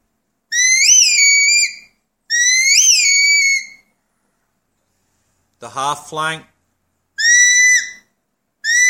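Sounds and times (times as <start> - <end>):
low-tone come-by sheepdog whistle: 0.5 - 3.9, 7.2 - 8.8
speech: 5.6 - 6.5.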